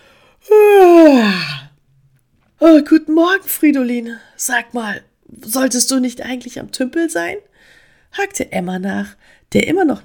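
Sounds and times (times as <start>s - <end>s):
loud drawn-out yawn: 0.4s - 1.8s
speech: 2.7s - 10.0s.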